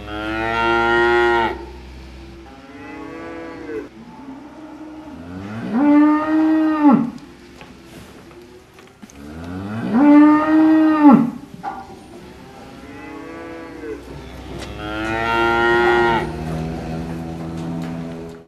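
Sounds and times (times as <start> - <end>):
cow sounds: 0.0 - 18.4.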